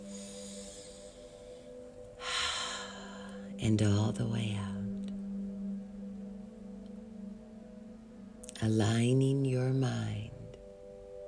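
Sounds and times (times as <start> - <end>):
slow deep breath drawn in through the nose: 0.0 - 3.5
faint steady hum: 0.0 - 11.2
speech: 3.6 - 4.8, 8.6 - 10.2.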